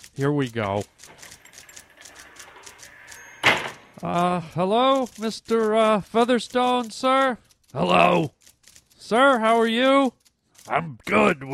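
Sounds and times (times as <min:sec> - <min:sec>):
speech: 0:00.2 - 0:01.2, 0:04.0 - 0:08.4, 0:09.1 - 0:11.5
door opening with a whooshing rush: 0:01.1 - 0:04.0.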